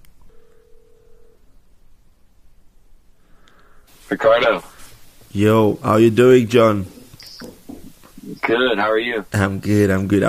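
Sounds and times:
telephone line hiss while call waits to connect: 0:00.3 - 0:01.4, 0:03.9 - 0:09.4
speech: 0:04.1 - 0:04.7, 0:05.3 - 0:07.0, 0:08.5 - 0:10.2.

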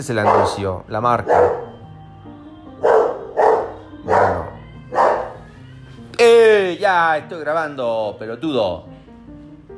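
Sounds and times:
speech: 0:00.0 - 0:01.7, 0:06.9 - 0:09.0
pet dog barking: 0:00.0 - 0:01.8, 0:02.8 - 0:05.5.

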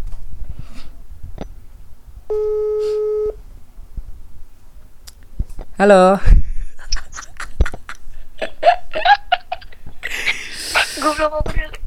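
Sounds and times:
steady telephone ringback tone: 0:02.3 - 0:03.4
speech: 0:05.8 - 0:06.4
laughter: 0:06.6 - 0:11.1.

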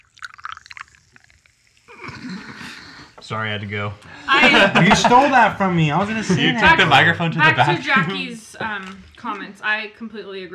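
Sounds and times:
fizzing of tiny bubbles in a poured drink: 0:00.0 - 0:02.6, 0:08.7 - 0:09.5
drink pouring with a low gurgle: 0:00.0 - 0:02.8
speech: 0:03.3 - 0:10.5
laughter: 0:04.1 - 0:08.4.

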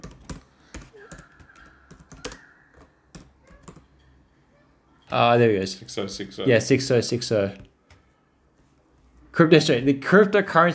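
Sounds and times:
typing on a computer keyboard: 0:00.0 - 0:04.1
speech: 0:05.1 - 0:07.7, 0:09.4 - 0:10.7.

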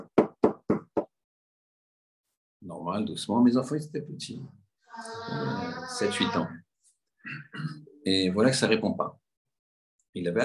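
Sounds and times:
knuckles knocking on a wooden door: 0:00.0 - 0:01.1
speech: 0:02.7 - 0:06.7, 0:07.3 - 0:09.2, 0:10.1 - 0:10.4.

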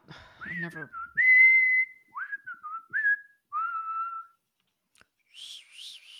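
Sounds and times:
thin wavering failed whistling: 0:00.4 - 0:04.4, 0:05.2 - 0:06.1
speech: 0:00.6 - 0:01.1.

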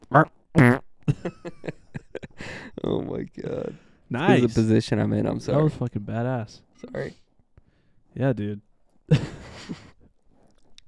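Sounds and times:
voice imitating a fart: 0:00.0 - 0:00.9
speech: 0:00.1 - 0:00.8, 0:02.9 - 0:07.2, 0:08.2 - 0:09.8
laughter: 0:01.1 - 0:02.7, 0:09.1 - 0:10.0.

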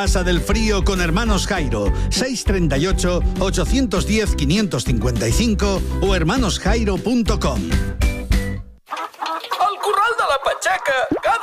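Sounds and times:
speech: 0:00.0 - 0:08.1
hen clucking: 0:08.9 - 0:11.2.

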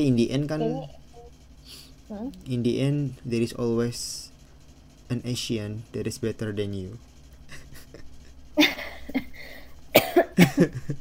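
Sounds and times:
speech: 0:00.0 - 0:01.0, 0:01.7 - 0:04.3, 0:05.1 - 0:07.1, 0:10.0 - 0:10.9
harsh coughs: 0:09.9 - 0:10.7.

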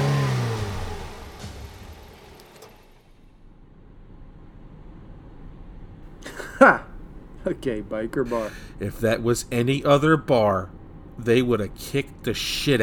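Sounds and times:
hearse engine revving and speeding away from a bar: 0:00.0 - 0:02.9
speech: 0:06.6 - 0:12.8.

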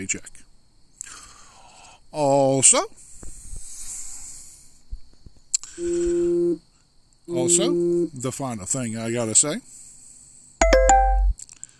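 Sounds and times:
speech: 0:00.0 - 0:00.5, 0:02.1 - 0:03.0, 0:05.8 - 0:06.7, 0:07.3 - 0:09.8
electronic phone notification chime: 0:10.6 - 0:11.3.

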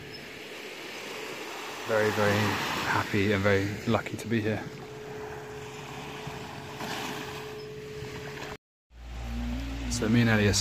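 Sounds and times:
water washing on a beach on the south side of an island: 0:00.0 - 0:08.6
steady outdoor wind on a beach: 0:00.0 - 0:10.5
speech: 0:01.9 - 0:04.8, 0:10.0 - 0:10.5
low droning hum: 0:04.6 - 0:10.5.

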